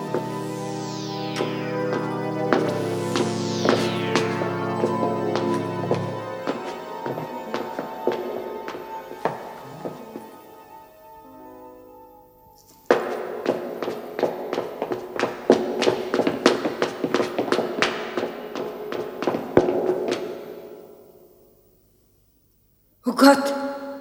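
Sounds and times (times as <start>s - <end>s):
footsteps of someone following a woman on a street: 0.0s - 10.8s, 12.8s - 20.9s
eerie swelling tonal music with descending swoops: 0.0s - 21.1s.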